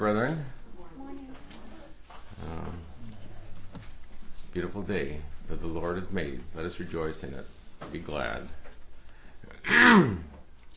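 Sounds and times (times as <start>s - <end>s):
speech: 0.0s - 0.6s, 4.6s - 8.6s, 9.6s - 10.3s
person clearing throat: 9.6s - 10.4s.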